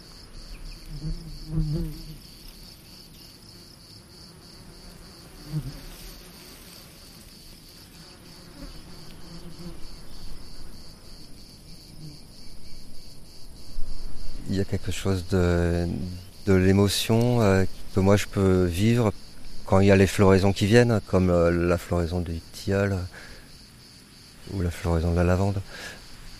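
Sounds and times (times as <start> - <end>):
bees buzzing on flowers in a garden with cherry and olive trees: 0.0 - 20.4
speech: 1.0 - 2.3, 14.6 - 19.1, 19.7 - 23.3, 24.5 - 26.0.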